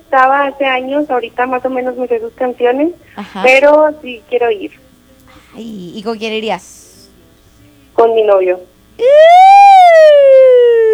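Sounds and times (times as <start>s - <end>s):
speech: 0.1s - 4.9s, 5.6s - 6.8s, 8.0s - 10.2s
siren sound effect wail rising and falling in pitch: 9.0s - 10.9s.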